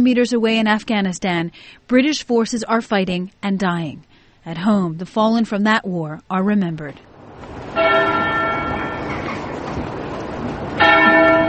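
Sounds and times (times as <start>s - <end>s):
speech: 0.0s - 7.1s
church bell tolling in Wootton Bassett for fallen soldiers: 7.7s - 11.4s.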